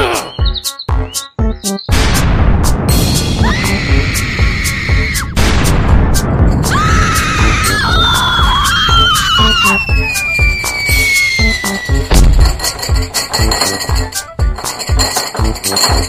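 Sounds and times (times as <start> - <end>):
chirping and whistling tones: 0.1 - 1.9, 7.9 - 12.2
thrown grenade explosions: 1.9 - 4.5, 5.2 - 7.5
scattered clinks: 12.3 - 16.0.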